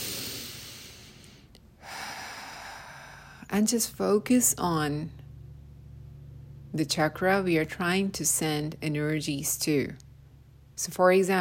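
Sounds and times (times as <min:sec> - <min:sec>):
long deep breath during a guided meditation: 0:00.0 - 0:03.5
speech: 0:03.5 - 0:05.2, 0:06.8 - 0:10.0, 0:10.8 - 0:11.3.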